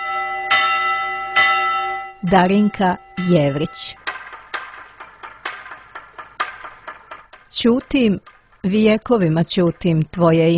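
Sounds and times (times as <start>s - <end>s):
monastery church bells tolling: 0.0s - 4.6s
steady resonant hum: 0.0s - 10.5s
speech: 2.2s - 4.0s, 7.6s - 10.5s.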